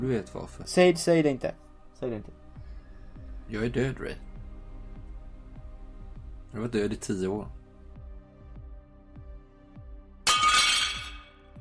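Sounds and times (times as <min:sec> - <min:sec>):
speech: 0:00.0 - 0:02.4, 0:03.5 - 0:04.3, 0:06.5 - 0:07.6
plates dropped and shattering on the floor of a police station lunchroom: 0:10.3 - 0:11.4.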